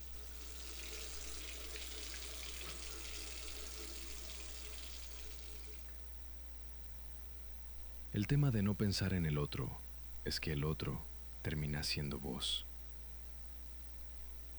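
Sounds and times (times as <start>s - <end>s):
water running from an open tap: 0.0s - 5.9s
low electrical hum: 0.0s - 14.5s
speech: 8.2s - 12.7s.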